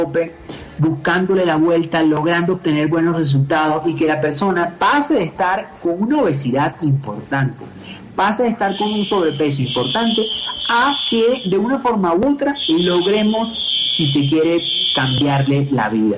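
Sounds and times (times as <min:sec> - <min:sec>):
speech: 0:00.0 - 0:16.1
high steady electronic alarm tone: 0:08.7 - 0:11.7, 0:12.5 - 0:15.8.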